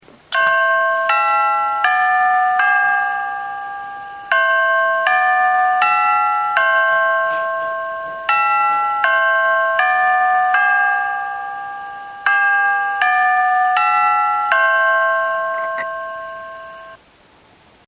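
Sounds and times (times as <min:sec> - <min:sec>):
clock chimes: 0:00.3 - 0:17.0
cuckoo call: 0:15.4 - 0:17.0.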